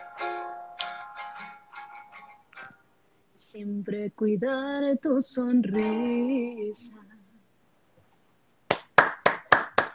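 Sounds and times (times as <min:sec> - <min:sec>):
hands clapping: 0:00.8 - 0:01.1, 0:08.7 - 0:09.9
speech: 0:03.5 - 0:07.0.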